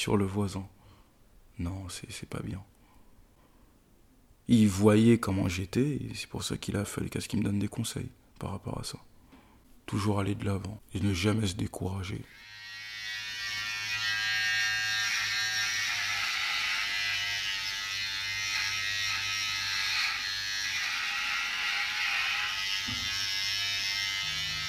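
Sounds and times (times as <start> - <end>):
speech: 0.0 - 0.8, 1.6 - 2.7, 4.5 - 9.1, 9.9 - 12.5
electric razor buzzing: 12.3 - 24.6.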